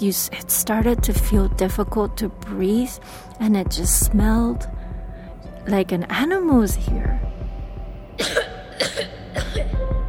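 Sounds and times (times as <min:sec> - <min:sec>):
speech: 0:00.0 - 0:04.8, 0:05.6 - 0:07.3, 0:08.2 - 0:09.1
low rumble: 0:00.3 - 0:08.8
harsh coughs: 0:08.2 - 0:09.8.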